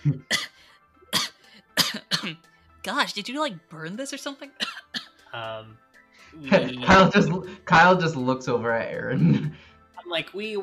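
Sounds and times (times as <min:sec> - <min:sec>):
speech: 0:00.0 - 0:00.4, 0:02.3 - 0:10.6
small dry coughs: 0:00.0 - 0:02.4.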